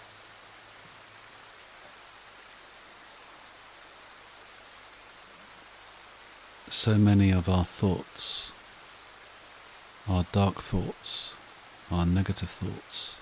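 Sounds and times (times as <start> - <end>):
gentle rain falling: 0.0 - 13.2
speech: 6.7 - 8.6, 10.1 - 13.2.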